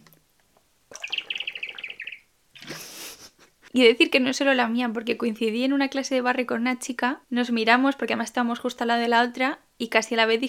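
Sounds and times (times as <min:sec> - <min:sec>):
large water bottle squeaking while someone drinks: 0:00.9 - 0:02.8
speech: 0:03.7 - 0:10.4.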